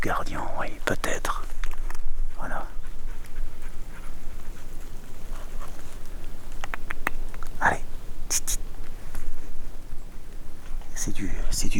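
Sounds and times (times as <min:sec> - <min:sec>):
speech: 0:00.0 - 0:01.4
steady outdoor noise: 0:00.0 - 0:11.7
dog panting: 0:02.3 - 0:06.2.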